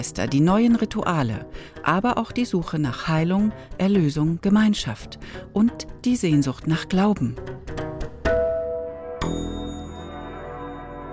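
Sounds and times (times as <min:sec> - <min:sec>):
speech: 0:00.0 - 0:07.8
church bells ringing: 0:09.2 - 0:11.1.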